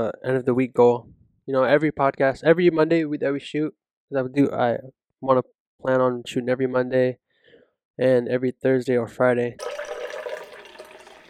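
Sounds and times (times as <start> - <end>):
speech: 0.0 - 7.2, 8.0 - 9.8
stream of liquid splashing into water: 9.6 - 11.2.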